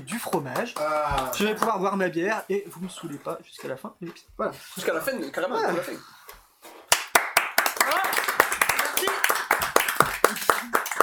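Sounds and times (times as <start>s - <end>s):
small group of people clapping: 0.0s - 1.9s, 6.9s - 11.0s
speech: 0.1s - 6.2s.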